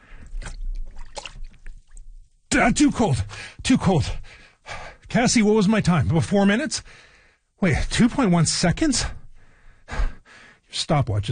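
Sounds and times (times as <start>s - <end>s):
water trickling and dripping: 0.0s - 2.4s
arm plunging into a tub of water splashing and sloshing: 0.4s - 1.7s
speech: 2.5s - 4.4s, 5.1s - 9.2s, 10.7s - 11.2s.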